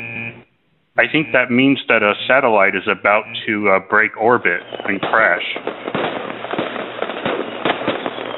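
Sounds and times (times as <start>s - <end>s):
speech: 1.0s - 6.0s
fireworks exploding: 2.9s - 8.3s.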